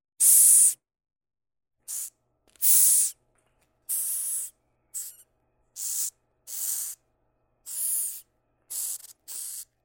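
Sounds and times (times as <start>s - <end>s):
Madagascar cockroach hissing: 0.2s - 0.8s, 1.9s - 3.2s, 3.9s - 5.2s, 5.8s - 7.0s, 7.6s - 9.8s.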